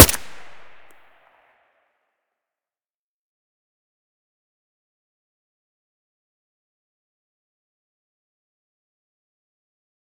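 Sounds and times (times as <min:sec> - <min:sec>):
silenced AK-74U rifle shot: 0:00.0 - 0:00.9.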